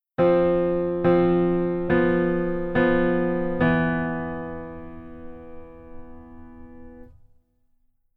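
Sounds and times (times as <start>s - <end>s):
rootless keyboard voicings on piano: 0.2s - 7.2s.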